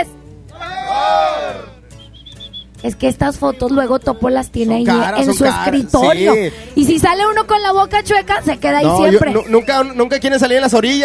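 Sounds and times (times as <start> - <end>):
group of voices shouting a phrase in unison: 0.5 - 1.8
short high chirps: 1.9 - 2.9
speech: 2.8 - 11.0.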